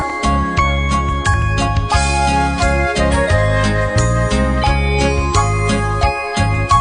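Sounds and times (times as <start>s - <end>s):
bells jingling through a festive holiday tune: 0.0s - 6.8s
festive holiday music with full backing and steady beat: 0.0s - 6.8s.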